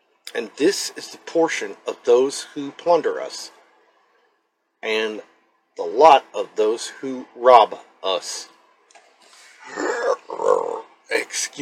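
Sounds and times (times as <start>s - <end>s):
speech: 0.4s - 3.6s, 4.8s - 8.6s, 9.6s - 10.2s, 11.3s - 11.6s
loud drawn-out guttural belch: 9.6s - 10.9s.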